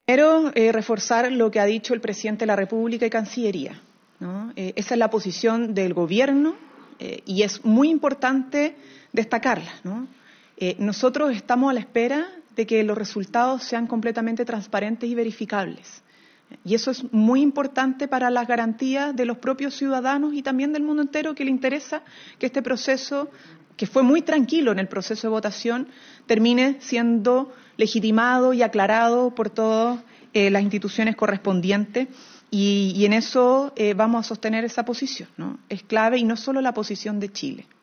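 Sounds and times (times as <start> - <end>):
vocals: 0.0 - 37.8.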